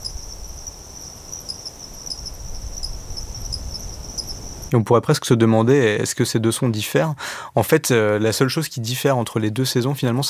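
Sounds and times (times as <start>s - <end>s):
insects chirping at night in the dry season: 0.0s - 4.7s
speech: 4.7s - 10.2s.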